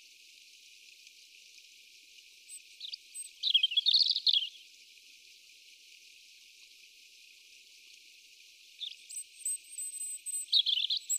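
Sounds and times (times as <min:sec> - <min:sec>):
European robin Erithacus rubecula singing: 0:02.8 - 0:04.6, 0:08.8 - 0:11.1.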